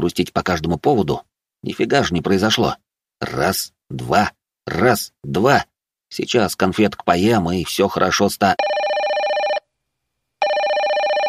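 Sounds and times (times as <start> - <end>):
speech: 0.0 - 8.8
mobile phone ringing with trilling electronic ringtone: 8.6 - 9.7, 10.4 - 11.2.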